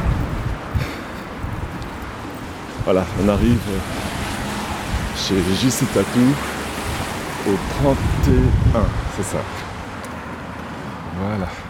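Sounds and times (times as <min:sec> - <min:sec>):
stormy wind gusting outdoors in foul weather: 0:00.0 - 0:06.0, 0:06.6 - 0:09.9
speech: 0:02.9 - 0:04.1, 0:05.2 - 0:06.5, 0:07.4 - 0:09.6, 0:11.2 - 0:11.6.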